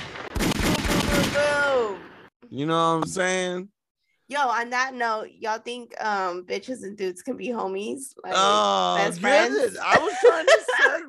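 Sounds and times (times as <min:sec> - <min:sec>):
gunshot sound effect: 0:00.0 - 0:01.7
blasts: 0:00.0 - 0:02.3
speech: 0:01.9 - 0:11.0
laughter: 0:08.3 - 0:11.0.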